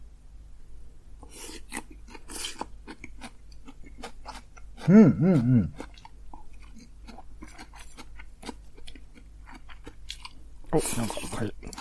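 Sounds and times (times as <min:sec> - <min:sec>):
chewing of eel: 0:01.2 - 0:11.7
person humming: 0:04.8 - 0:05.8
speech: 0:04.9 - 0:05.8, 0:10.8 - 0:11.7.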